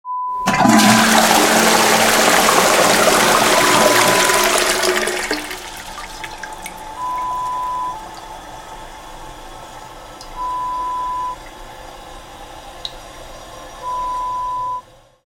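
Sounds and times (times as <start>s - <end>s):
toilet flush: 0.4s - 14.0s.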